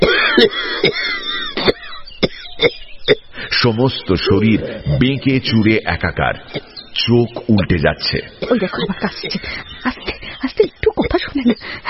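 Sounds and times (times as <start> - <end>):
speech: 0.0 - 1.0, 3.6 - 10.3, 11.2 - 11.8
elderly man coughing after choking on a mouthful of rice: 0.0 - 3.3, 6.5 - 6.8, 8.3 - 9.5
laughter: 8.4 - 11.8.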